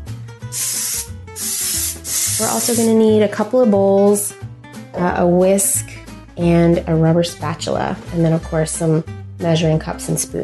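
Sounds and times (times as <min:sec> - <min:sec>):
cooking spray sprayed onto sheet pan: 0:00.5 - 0:02.9
speech: 0:02.4 - 0:04.4, 0:05.0 - 0:05.7, 0:06.4 - 0:10.4.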